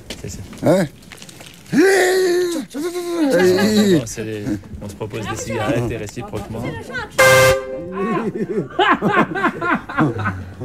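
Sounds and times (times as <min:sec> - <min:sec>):
speech: 0:00.2 - 0:10.6
people laughing and chuckling: 0:02.7 - 0:04.6, 0:07.7 - 0:10.6
horn blast from a huge truck loaded with furniture: 0:07.2 - 0:08.0.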